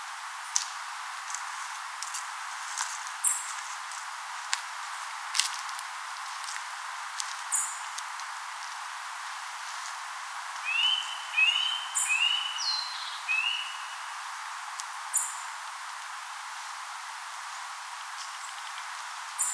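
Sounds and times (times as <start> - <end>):
background hiss: 0.0 - 19.5
Eurasian nuthatch Sitta europaea giving short rising whistled notes: 10.6 - 14.0.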